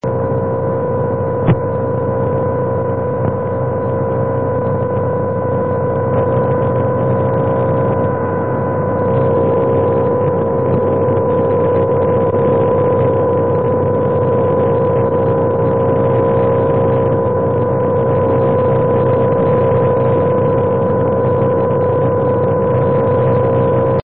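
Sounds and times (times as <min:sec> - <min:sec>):
AM satellite signal: 0:00.0 - 0:24.0.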